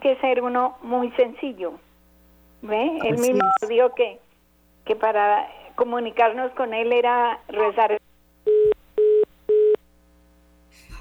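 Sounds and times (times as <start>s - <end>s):
speech: 0.0s - 1.9s, 2.6s - 4.2s, 4.8s - 8.0s
telephone tones heard when a call drops: 3.0s - 3.7s, 8.5s - 9.8s.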